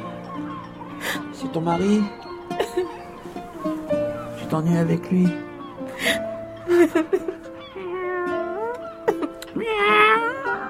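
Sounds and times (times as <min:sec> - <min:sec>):
speech: 0:01.2 - 0:03.0, 0:03.6 - 0:07.3
cold shivering cat meowing in Algeria: 0:07.6 - 0:10.6.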